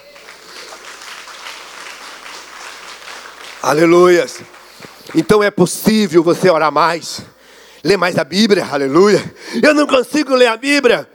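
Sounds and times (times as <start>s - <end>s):
audience applauding: 0.0s - 5.4s
speech: 3.6s - 11.1s.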